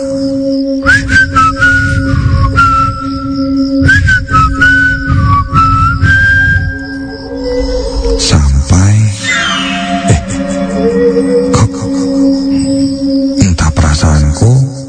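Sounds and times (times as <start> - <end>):
steady low hum: 0.0 - 13.6
person whistling idly while looking at a phone: 0.8 - 7.2.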